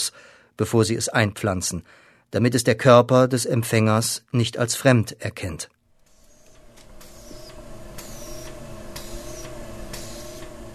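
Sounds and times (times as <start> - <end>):
speech: 0.0 - 5.8
laboratory pump in a cell lab pushing fluid through long tubes: 6.0 - 10.7.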